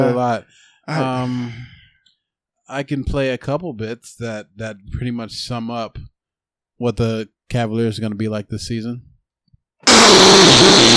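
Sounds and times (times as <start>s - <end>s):
speech: 0.0s - 1.7s, 2.7s - 6.1s, 6.8s - 9.1s, 9.8s - 10.9s
loud buzzy fake fart sound effect: 9.8s - 10.9s.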